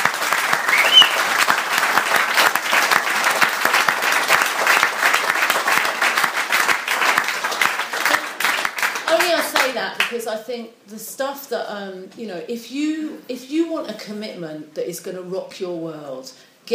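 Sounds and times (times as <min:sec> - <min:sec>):
room full of people clapping: 0:00.0 - 0:09.7
speech: 0:10.1 - 0:16.7.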